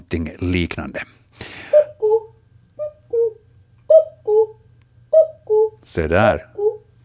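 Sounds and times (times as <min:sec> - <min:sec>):
faint low hum: 0:00.0 - 0:07.0
speech: 0:00.1 - 0:01.6, 0:06.0 - 0:06.5
person whistling or hooting an imitation of a cuckoo call: 0:01.7 - 0:05.8, 0:06.4 - 0:06.9.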